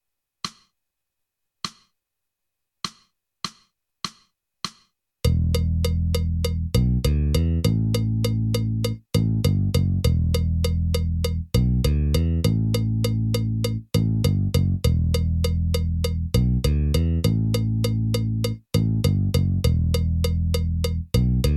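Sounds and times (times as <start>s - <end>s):
metronome clicking in eighth notes: 5.3s - 21.5s.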